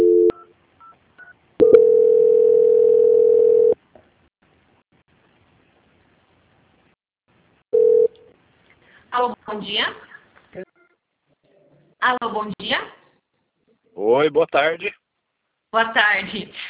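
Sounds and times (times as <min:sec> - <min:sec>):
steady telephone tone during a call transfer: 0:00.0 - 0:00.5, 0:01.6 - 0:03.8, 0:07.8 - 0:08.1
speech: 0:09.6 - 0:10.7, 0:12.0 - 0:13.0, 0:14.0 - 0:15.0, 0:15.7 - 0:16.6.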